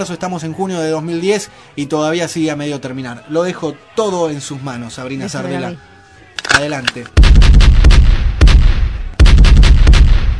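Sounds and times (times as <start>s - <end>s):
speech: 0.0s - 7.2s
gunshot sound effect of rapid gunfire bursts: 7.2s - 10.3s.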